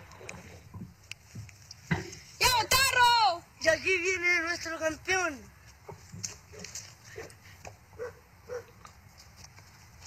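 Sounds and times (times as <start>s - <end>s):
steady outdoor noise: 0.0s - 10.0s
speech: 3.8s - 5.5s
dog barking in short yelps while chasing: 8.0s - 8.8s.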